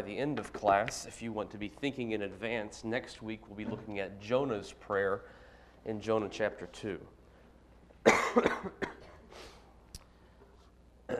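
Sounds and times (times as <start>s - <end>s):
speech: 0.0s - 7.2s, 8.0s - 8.9s
person coughing harshly during a class: 8.0s - 9.3s.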